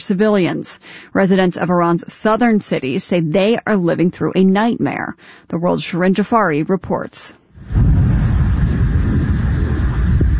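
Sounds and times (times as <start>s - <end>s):
speech: 0.0s - 8.0s
heavy booming rumble of nighttime airstrikes in a southern Iranian coastal city: 7.6s - 10.3s.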